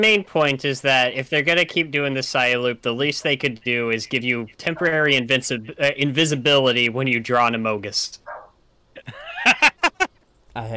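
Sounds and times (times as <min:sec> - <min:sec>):
speech: 0:00.0 - 0:08.2, 0:10.6 - 0:10.7
female dog barking: 0:08.2 - 0:08.6
female dog whining: 0:08.3 - 0:08.5
laughter: 0:09.0 - 0:10.1.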